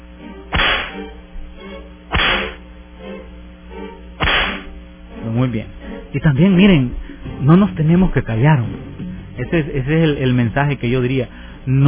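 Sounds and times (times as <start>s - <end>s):
faint low hum: 0.0s - 11.8s
sharp whip lashes cracking: 0.5s - 1.0s, 2.1s - 2.6s, 4.2s - 4.7s
speech: 5.5s - 11.8s.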